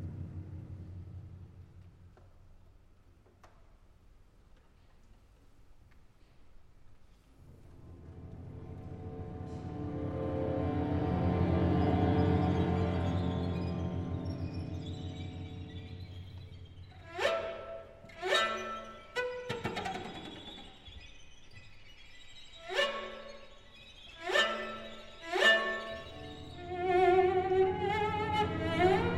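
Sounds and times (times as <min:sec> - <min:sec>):
chamber orchestra playing: 0:07.7 - 0:19.1, 0:22.4 - 0:29.1.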